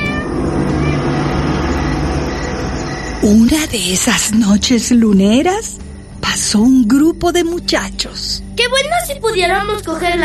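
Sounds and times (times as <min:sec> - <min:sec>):
cat yowling like a courting call: 0:00.0 - 0:01.4
low rumbling background: 0:00.0 - 0:07.6
speech: 0:03.2 - 0:10.2.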